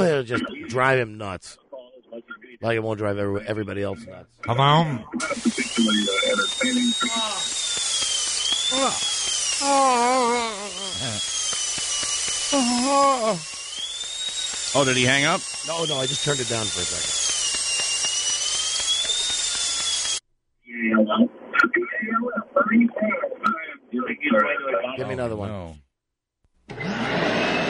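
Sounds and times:
speech: 0.0 - 7.6, 8.7 - 11.4, 12.5 - 13.6, 14.7 - 17.2, 21.0 - 25.8, 26.7 - 27.4
voices making wavering, drawn-out sounds: 3.8 - 7.6, 8.7 - 11.3, 12.5 - 13.5, 20.7 - 25.2
dentist's drill sound effect whining at a high pitch: 5.2 - 20.2, 26.7 - 27.6.

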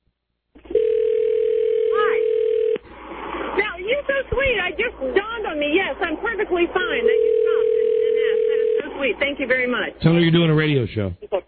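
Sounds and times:
noise: 0.0 - 11.4
telephone dial tone: 0.6 - 2.8, 7.0 - 8.9
speech: 4.5 - 7.3, 9.0 - 11.4.

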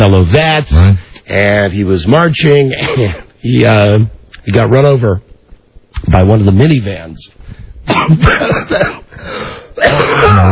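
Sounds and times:
speech: 0.0 - 5.3, 6.0 - 10.5
person coughing from laughter: 2.8 - 3.3, 7.9 - 10.5.

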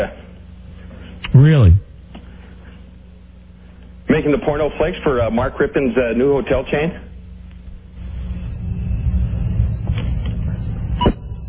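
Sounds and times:
speech: 1.3 - 1.9, 4.2 - 7.1
low rumble: 1.3 - 2.1, 7.9 - 11.4
crickets chirping in a shrill trill: 7.9 - 11.4.

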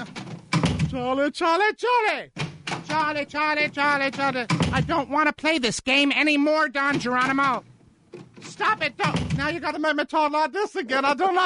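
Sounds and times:
door creaking open and shut on squeaky hinges: 0.0 - 1.1, 2.3 - 5.2, 6.7 - 9.8
speech: 0.9 - 7.7, 8.5 - 11.4.

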